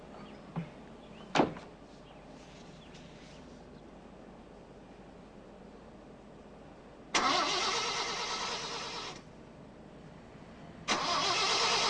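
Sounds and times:
car engine cranking and starting: 0:07.1 - 0:09.3, 0:10.8 - 0:11.8.

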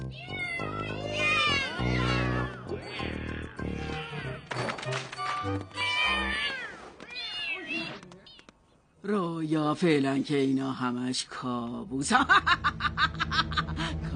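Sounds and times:
several cats meowing and yowling: 0:00.2 - 0:04.4, 0:05.7 - 0:08.5
speech: 0:09.1 - 0:13.5
laughter: 0:12.1 - 0:14.0.

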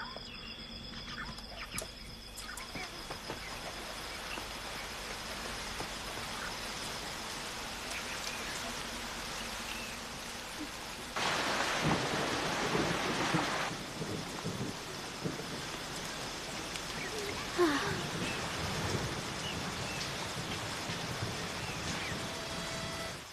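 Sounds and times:
steady rain falling during a thunderstorm: 0:01.9 - 0:23.3
low rumbling thunder: 0:11.2 - 0:23.3.

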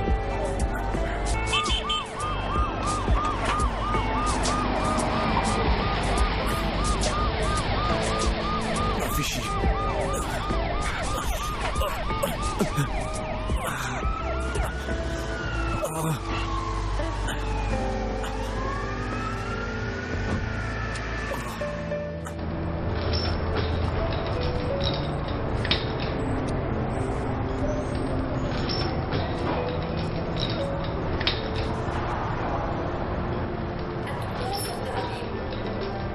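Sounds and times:
busy street traffic: 0:00.0 - 0:36.1
ambulance siren wailing: 0:00.4 - 0:22.4.

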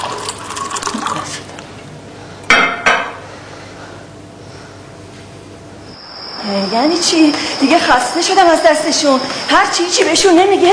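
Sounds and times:
water being poured into a glass: 0:00.0 - 0:01.4
speech: 0:06.5 - 0:10.7.

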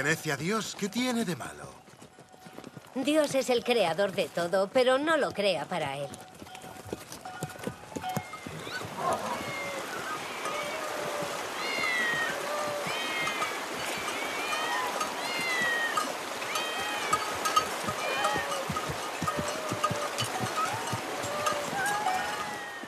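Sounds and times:
speech: 0:00.0 - 0:01.8, 0:03.0 - 0:06.3
hoofbeats clopping: 0:00.0 - 0:22.8
crowd of cats meowing in the city of Bast: 0:08.5 - 0:22.8.

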